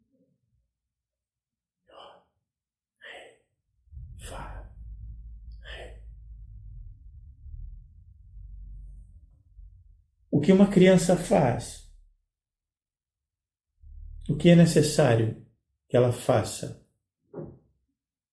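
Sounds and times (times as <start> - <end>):
person breathing slowly in and out: 3.0 - 8.9
low steady rumble: 3.8 - 12.2, 13.8 - 14.7
speech: 10.4 - 11.8, 14.4 - 16.8.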